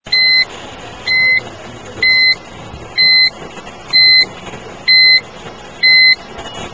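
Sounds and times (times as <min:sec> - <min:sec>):
car reversing: 0:00.0 - 0:06.7.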